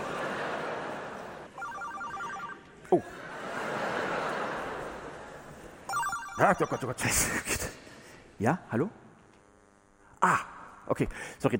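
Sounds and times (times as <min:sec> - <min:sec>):
laughter: 0:00.0 - 0:08.0
mobile phone ringing with trilling electronic tone: 0:01.6 - 0:02.7, 0:05.9 - 0:07.3
speech: 0:02.9 - 0:03.3, 0:06.4 - 0:07.8, 0:08.4 - 0:09.0, 0:10.2 - 0:11.5.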